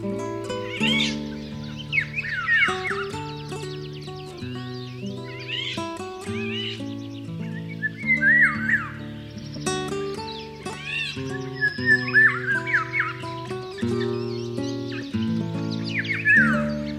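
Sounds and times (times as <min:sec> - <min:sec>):
Eurasian golden oriole whistling and chirping: 0:00.0 - 0:16.9.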